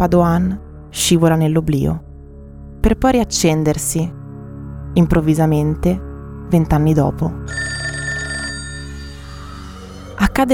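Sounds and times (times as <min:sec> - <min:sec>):
speech: 0:00.0 - 0:02.0, 0:02.8 - 0:04.2, 0:05.0 - 0:07.7, 0:10.2 - 0:10.5
old-style telephone bell ringing: 0:07.5 - 0:10.1.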